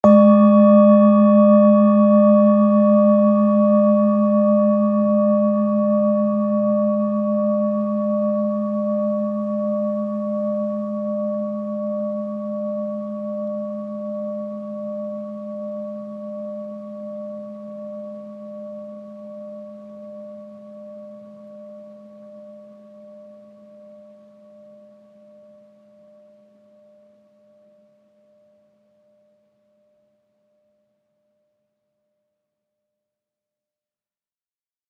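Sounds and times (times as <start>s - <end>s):
medium bowl tone in G sharp: 0.0s - 31.2s.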